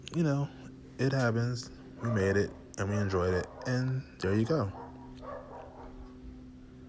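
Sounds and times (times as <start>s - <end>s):
steady low electrical hum: 0.0s - 6.8s
speech: 0.1s - 4.8s
dogs barking muffled: 1.8s - 6.2s.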